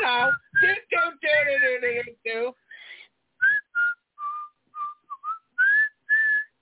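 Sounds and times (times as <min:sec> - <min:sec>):
person singing a wordless phrase: 0:00.0 - 0:02.6
person whistling a jaunty tune: 0:03.4 - 0:06.6.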